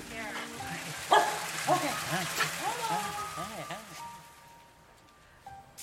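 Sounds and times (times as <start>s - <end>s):
voices: 0.0s - 4.2s
dog barking and yelping excitedly in greeting: 1.0s - 1.8s.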